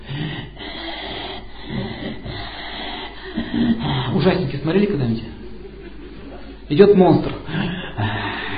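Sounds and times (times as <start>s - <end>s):
voice imitating a raspy wheezing breath: 0.0s - 4.6s, 7.4s - 8.5s
laughter: 3.1s - 6.7s
speech: 3.6s - 5.4s, 6.7s - 8.2s.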